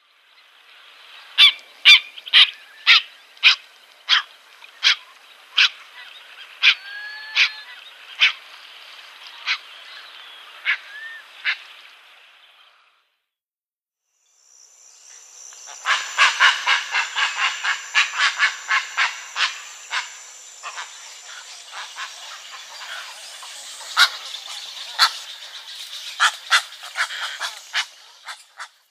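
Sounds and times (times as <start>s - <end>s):
Yellow-crowned Night Heron calling: 1.4s - 8.5s, 15.6s - 28.8s.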